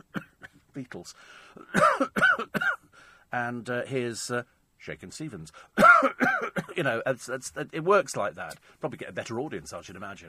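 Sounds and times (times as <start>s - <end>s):
coughing: 0.0s - 0.6s, 1.6s - 2.9s, 5.8s - 7.0s
speech: 0.8s - 10.2s
faint breathy trailing sound: 1.1s - 1.7s, 2.9s - 3.3s.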